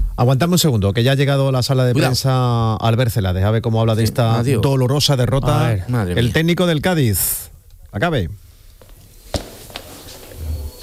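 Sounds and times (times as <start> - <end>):
low steady room hum: 0.0 - 10.8
speech: 0.2 - 8.4
footsteps of someone arriving at a press room: 8.8 - 10.8.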